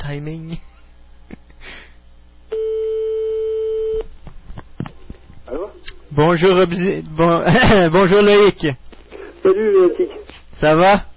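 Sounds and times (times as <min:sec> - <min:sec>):
speech: 0:00.1 - 0:00.7, 0:06.2 - 0:08.8, 0:09.4 - 0:11.1
European telephone ringing tone: 0:02.5 - 0:04.0.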